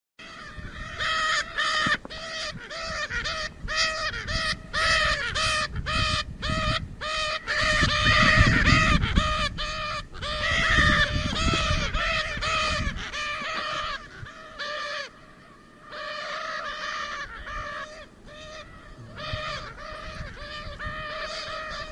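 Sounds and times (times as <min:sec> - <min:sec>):
Lear's macaw calling: 0:00.2 - 0:21.9.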